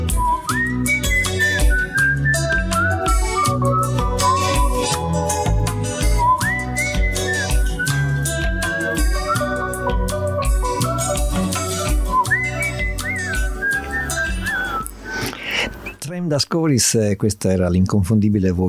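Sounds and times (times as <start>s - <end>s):
full band backing of bass and drums: 0.0s - 14.6s
person whistling a bright wavering melody at the end of a song: 0.0s - 16.0s
speech: 16.4s - 18.6s.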